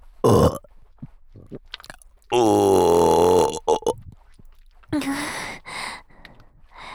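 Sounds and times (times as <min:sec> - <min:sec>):
long loud burp: 0:00.2 - 0:00.7, 0:01.5 - 0:04.0
breathy mouth noises: 0:00.2 - 0:04.2, 0:04.9 - 0:06.4
speech: 0:02.3 - 0:02.8.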